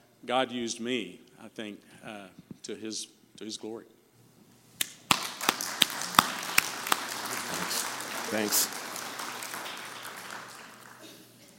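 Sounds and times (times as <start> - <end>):
speech: 0.2 - 4.0, 8.3 - 8.8
crowd applauding: 5.1 - 11.5.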